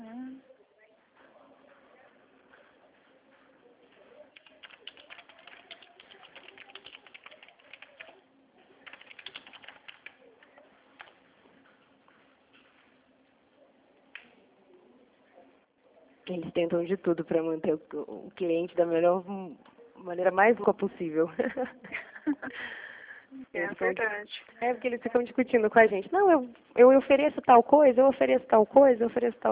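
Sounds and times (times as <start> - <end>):
low murmur: 0.0 - 29.5
woman typing on a computer keyboard: 4.3 - 8.2, 8.8 - 10.2, 11.0 - 11.2
speech: 16.3 - 22.8, 23.6 - 29.5.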